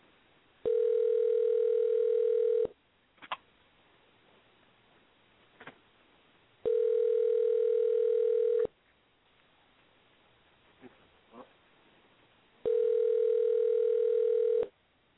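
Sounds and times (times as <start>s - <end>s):
outgoing phone call ringback tone: 0.6s - 2.8s, 6.6s - 8.7s, 12.6s - 14.7s.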